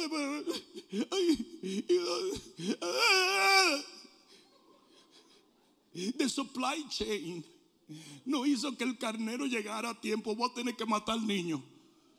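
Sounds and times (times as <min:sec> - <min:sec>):
speech: 0:00.0 - 0:03.9, 0:06.0 - 0:11.7
man mock sobbing and wailing: 0:00.0 - 0:04.1.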